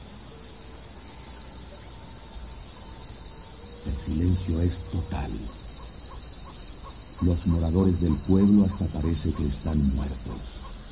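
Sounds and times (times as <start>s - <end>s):
crickets chirping at night: 0.0s - 10.9s
speech: 4.1s - 5.6s, 7.2s - 10.6s.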